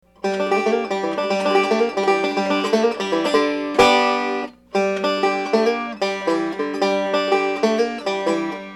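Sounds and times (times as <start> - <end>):
banjo lick in G: 0.0 - 8.7.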